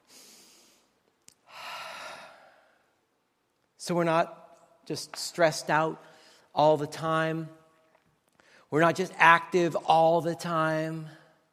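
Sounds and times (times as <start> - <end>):
deep breath in and out: 0.0 - 3.0, 6.0 - 6.6
speech: 3.8 - 7.6, 8.7 - 11.2.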